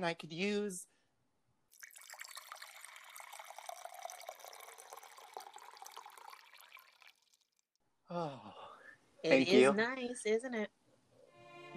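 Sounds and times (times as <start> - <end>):
speech: 0.0 - 0.9, 8.1 - 8.6, 9.2 - 10.8
water pouring into a glass: 1.7 - 7.6.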